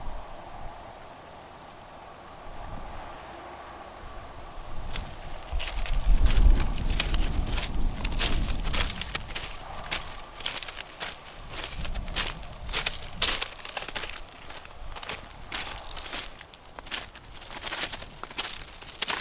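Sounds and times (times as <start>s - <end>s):
foot stomping on gravel: 4.8s - 19.1s.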